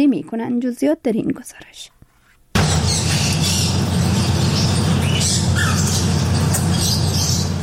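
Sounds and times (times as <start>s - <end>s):
speech: 0.0s - 2.0s
steady low room hum in a teahouse: 1.5s - 7.6s
canaries and parrots chirping and squawking in a teahouse: 2.6s - 7.6s.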